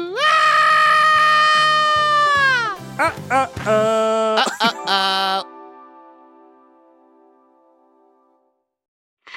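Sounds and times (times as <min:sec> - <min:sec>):
person screaming: 0:00.0 - 0:05.5
person yelping: 0:02.2 - 0:05.4
speech: 0:03.1 - 0:03.9.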